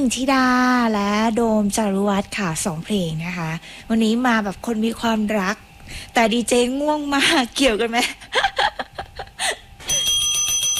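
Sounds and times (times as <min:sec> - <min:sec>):
speech: 0:00.0 - 0:08.7
bright bell ringing with a shimmering tone: 0:09.8 - 0:10.7.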